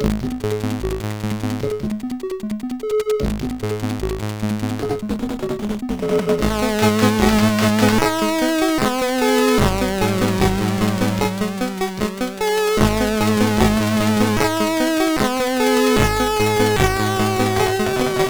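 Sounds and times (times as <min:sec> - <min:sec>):
CSG8580R5 chiptune intro music: 0:00.2 - 0:18.2.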